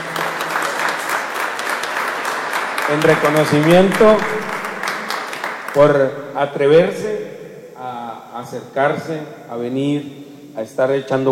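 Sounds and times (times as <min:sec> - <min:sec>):
crowd of neighbours clapping at a municipal government gathering: 0:00.0 - 0:06.1
speech: 0:02.9 - 0:04.4, 0:05.8 - 0:11.3.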